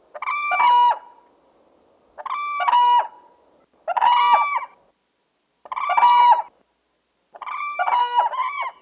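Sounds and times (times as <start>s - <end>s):
whooping crane giving harsh bugling guard calls: 0.2s - 1.1s, 2.2s - 3.2s, 3.9s - 4.8s, 5.6s - 6.5s, 7.4s - 8.8s.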